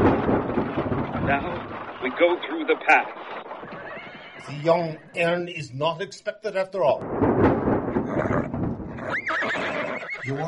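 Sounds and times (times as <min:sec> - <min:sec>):
rumble of hooves and harness of a four-horse calèche: 0:00.0 - 0:05.4, 0:07.0 - 0:10.4
speech: 0:01.3 - 0:03.5, 0:04.4 - 0:07.3, 0:10.3 - 0:10.4
horse of a four-horse calèche whinnying: 0:03.6 - 0:05.4, 0:08.0 - 0:10.4.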